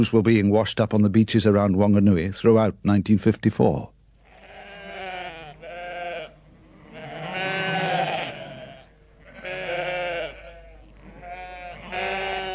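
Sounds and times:
speech: 0.0s - 4.0s
several sheep bleating in a pen: 4.2s - 12.5s.

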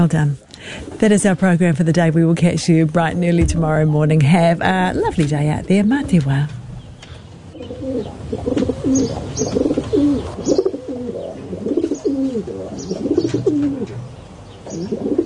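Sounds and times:
speech: 0.0s - 6.6s, 7.9s - 9.7s
rock pigeons cooing: 7.0s - 15.2s.

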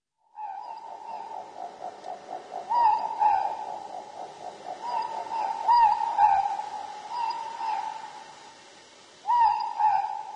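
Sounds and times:
morepork ruru owl hooting in New Zealand: 0.3s - 8.6s, 9.2s - 10.3s.

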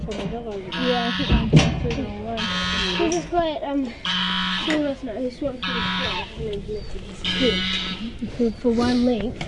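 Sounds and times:
voices murmuring: 0.0s - 9.4s
speech: 0.1s - 9.4s
goose honking on top of a hill: 0.7s - 1.6s, 2.3s - 3.3s, 4.0s - 6.4s, 7.2s - 8.2s.

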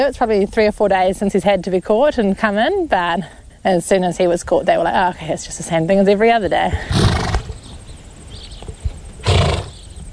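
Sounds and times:
speech: 0.0s - 7.2s
horse giving a short breathy whinny: 6.9s - 7.6s, 9.2s - 9.8s.

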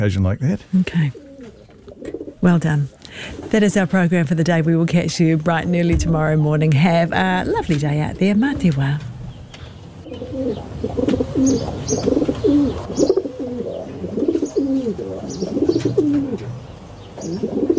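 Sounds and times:
speech: 0.0s - 1.2s, 2.4s - 9.1s, 10.4s - 13.1s
other birds chirping: 0.0s - 17.7s
rock pigeons cooing in soft rolling phrases: 1.1s - 3.6s, 10.0s - 17.7s.

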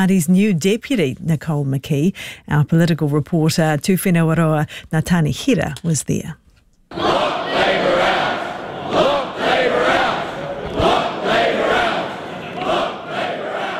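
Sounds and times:
speech: 0.0s - 7.2s
party supporters chanting a battle cry at a political rally: 6.9s - 13.7s.

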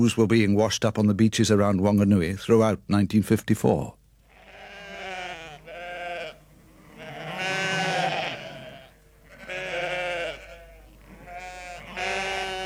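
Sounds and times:
speech: 0.0s - 4.0s
chorus of sheep bleating: 4.3s - 12.6s.

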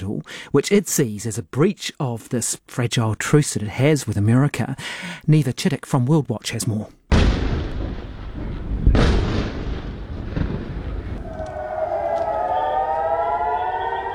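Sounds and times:
speech: 0.0s - 7.0s
sharp boom: 7.1s - 13.2s
low outdoor rumble over a city: 7.7s - 14.1s
air raid sirens wailing over a city: 10.8s - 14.1s.

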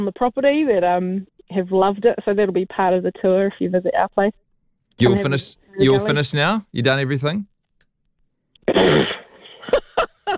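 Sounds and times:
speech: 0.0s - 4.4s, 5.0s - 7.5s
blown raspberry: 8.6s - 9.4s.

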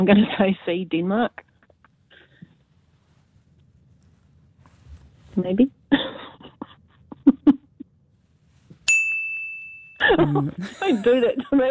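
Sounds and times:
speech: 0.0s - 1.5s, 5.4s - 6.3s, 10.0s - 11.7s
quiz-answer bell ding sound effect: 8.9s - 10.3s
laughter: 10.0s - 11.7s.

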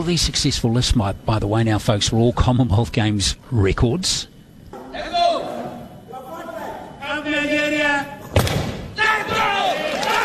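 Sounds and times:
speech: 0.0s - 4.3s
crowd shouting at a weightlifting competition: 4.8s - 8.2s, 8.8s - 10.2s.

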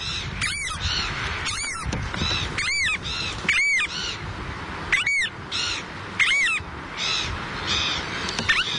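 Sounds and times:
variable oystercatcher Thoria pungo piping calls: 0.0s - 4.3s, 4.9s - 8.7s
steady hiss: 0.0s - 8.7s.

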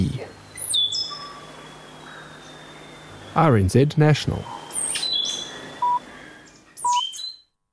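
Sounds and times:
faint hum: 0.0s - 7.3s
stitchbird whistling call: 0.5s - 3.4s, 4.5s - 7.5s
speech: 3.4s - 4.6s.

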